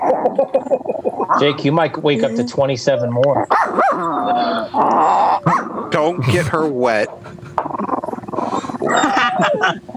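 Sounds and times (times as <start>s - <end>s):
speech: 0.2s - 5.2s, 5.9s - 7.4s, 8.9s - 9.9s
female dog growling and whining while held by a person: 3.4s - 6.6s, 7.6s - 9.4s.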